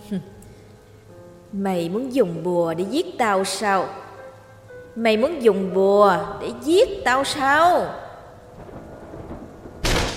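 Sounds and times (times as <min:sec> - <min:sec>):
speech: 0:00.1 - 0:00.4, 0:01.5 - 0:04.0, 0:05.0 - 0:08.0
low rumbling noise: 0:08.2 - 0:10.1
door being smashed open with a loud crash: 0:08.6 - 0:10.1.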